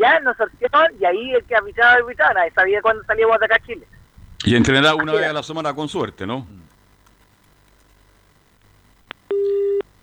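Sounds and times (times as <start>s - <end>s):
speech: 0.0s - 6.7s
low hiss: 0.0s - 10.0s
telephone busy tone beep after a dropped mobile phone call: 9.3s - 9.8s.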